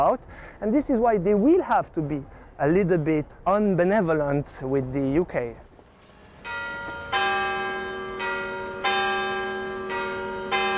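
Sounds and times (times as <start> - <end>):
speech: 0.0 - 5.7
church bells tolling: 6.4 - 10.7.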